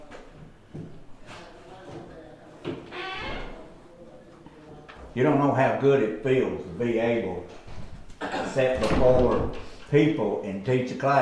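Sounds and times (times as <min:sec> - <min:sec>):
speech: 0:05.2 - 0:07.6, 0:08.5 - 0:11.2
classroom door swinging shut with a thud: 0:08.8 - 0:09.6.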